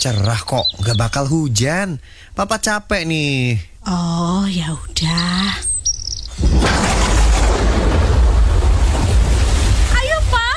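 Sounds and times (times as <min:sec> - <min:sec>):
speech: 0:00.0 - 0:05.7
flood water rushing into a house from a blocked drain: 0:06.5 - 0:10.5.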